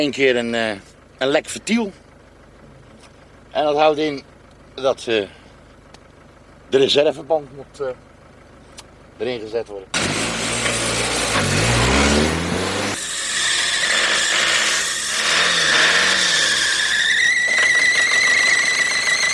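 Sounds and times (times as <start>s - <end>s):
speech: 0.0s - 2.0s, 3.6s - 5.4s, 6.7s - 8.1s, 9.2s - 10.0s
car engine revving: 9.9s - 17.0s
squeal-like tone: 12.9s - 19.3s.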